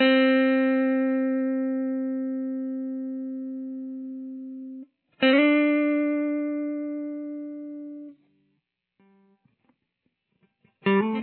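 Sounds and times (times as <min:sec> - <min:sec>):
clean lead guitar intro: 0:00.0 - 0:08.2, 0:10.6 - 0:11.2.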